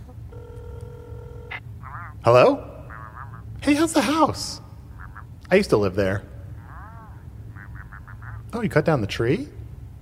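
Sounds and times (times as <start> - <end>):
phone line tone while dialing a phone number: 0.0 - 2.3
low hum: 0.0 - 10.0
speech: 2.2 - 2.7, 3.6 - 4.6, 5.5 - 6.3, 8.5 - 9.6.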